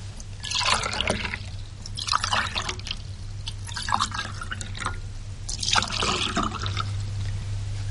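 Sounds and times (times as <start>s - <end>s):
low hum: 0.0s - 7.8s
liquid poured from a jug into glasses: 0.4s - 7.0s.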